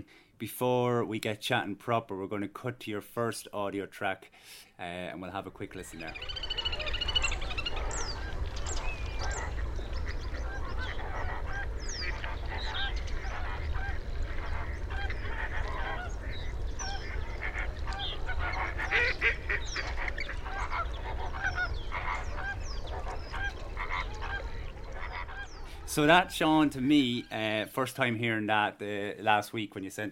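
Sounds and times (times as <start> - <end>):
speech: 0.1 - 6.6, 26.0 - 30.0
ducks calling at a spring wetland at dawn: 5.4 - 28.7
geese honking at a spring wetland at dawn: 5.8 - 28.2.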